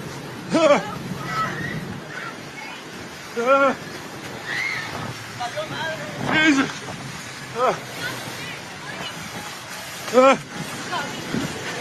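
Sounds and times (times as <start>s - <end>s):
steady roar of rushing water: 0.0s - 11.7s
wind: 0.0s - 11.7s
people shouting and screaming while running from rushing water: 0.7s - 2.4s, 3.4s - 5.2s
speech: 3.4s - 3.9s, 5.5s - 7.0s, 7.6s - 8.2s, 10.1s - 11.2s.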